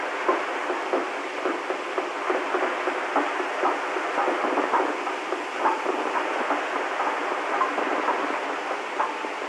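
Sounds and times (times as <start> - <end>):
downtempo drum loop: 0.2 - 9.4.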